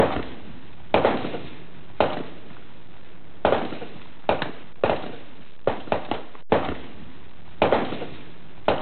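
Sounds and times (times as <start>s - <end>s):
distant M16 rifle gunshot bursts: 0.0s - 2.4s, 3.4s - 7.0s, 7.6s - 8.7s.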